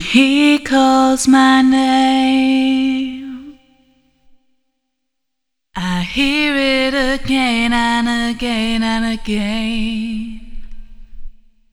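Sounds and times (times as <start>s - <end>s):
vocal through a 3 way EQ: 0.0s - 3.9s, 5.8s - 11.2s.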